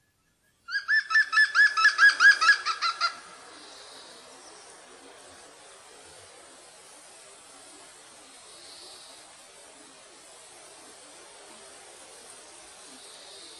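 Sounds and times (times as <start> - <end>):
faint hiss: 0.0 - 13.5
European green woodpecker laughing call: 0.7 - 3.4.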